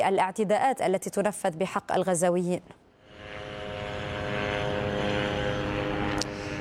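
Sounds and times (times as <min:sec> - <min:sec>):
speech: 0:00.0 - 0:02.8
reconnaissance drone flying at very low altitude over Gaza City: 0:03.0 - 0:06.6.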